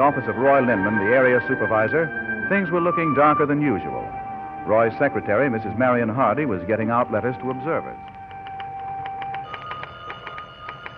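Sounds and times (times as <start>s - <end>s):
speech: 0.0s - 4.0s, 4.7s - 8.1s
telephone bell ringing in an office: 9.4s - 10.9s.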